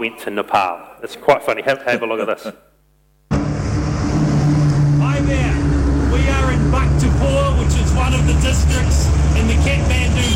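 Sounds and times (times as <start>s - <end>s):
speech: 0.0s - 2.7s, 8.3s - 10.3s
dense road traffic roar of engines: 3.3s - 10.3s.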